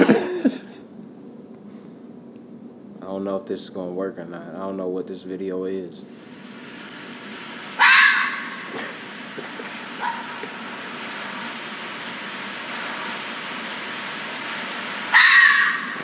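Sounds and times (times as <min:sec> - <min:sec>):
laughter: 0:00.0 - 0:00.8, 0:08.7 - 0:11.0
faint steady hiss: 0:00.0 - 0:16.0
speech: 0:03.2 - 0:06.4
bobcat screaming: 0:07.8 - 0:09.0, 0:09.9 - 0:10.6, 0:15.0 - 0:16.0.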